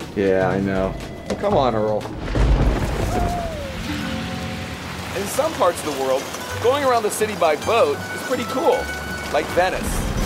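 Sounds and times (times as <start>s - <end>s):
speech: 0.2s - 3.5s, 5.2s - 10.2s
steady rain: 2.2s - 10.2s.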